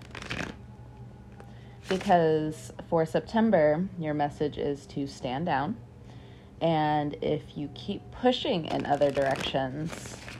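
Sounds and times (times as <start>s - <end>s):
tarot cards being shuffled during a tarot reading: 0.0s - 0.6s, 1.3s - 2.2s, 8.7s - 10.3s
quiet steady hum: 0.0s - 10.3s
speech: 1.9s - 5.9s, 6.6s - 10.2s.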